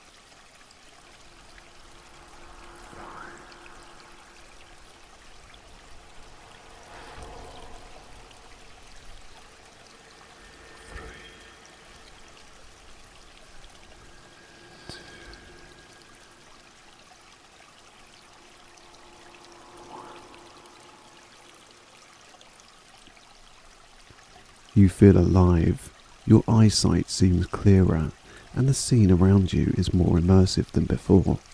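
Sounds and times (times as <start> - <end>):
water gently splashing: 0.0 - 24.4
water pouring and trickling: 0.0 - 31.5
speech: 24.8 - 31.5.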